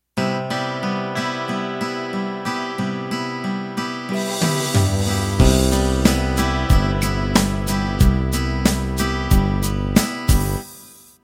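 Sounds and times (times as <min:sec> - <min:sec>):
country ballad intro: 0:00.4 - 0:10.6.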